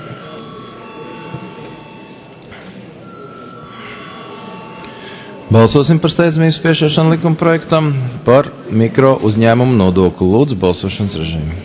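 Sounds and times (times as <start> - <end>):
electric bell ringing in a parliament chamber before a vote: 0.0 - 6.2
speech: 5.5 - 11.6.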